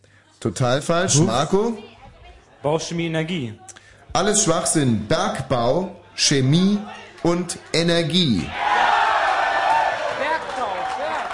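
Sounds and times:
speech: 0.4 - 1.9, 2.6 - 8.7
crowd cheering and shouting: 6.6 - 11.3.

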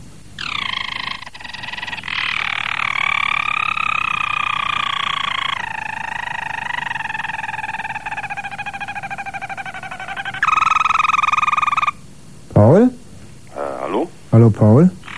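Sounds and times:
Harzer Roller canary singing deep rolling trill: 0.0 - 12.1, 15.0 - 15.1
speech: 14.4 - 15.0.

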